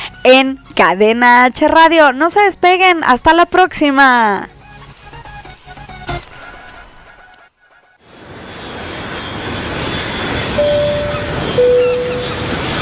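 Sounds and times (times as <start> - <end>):
speech: 0.2 - 4.5
airplane engine roar in flight: 8.0 - 12.7
faint tonal whine: 10.0 - 12.7.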